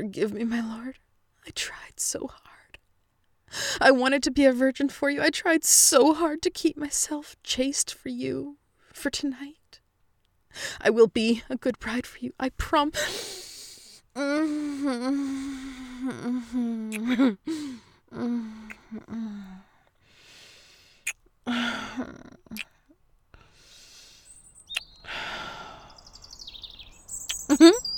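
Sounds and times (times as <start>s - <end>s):
speech: 0.0s - 2.6s, 3.5s - 9.6s, 10.6s - 13.5s, 14.2s - 19.6s, 21.5s - 22.7s, 27.5s - 27.9s
breathy voice making wavering whimpering sounds: 14.2s - 19.8s
thin high bluebird chirps: 24.2s - 25.1s, 25.8s - 27.9s.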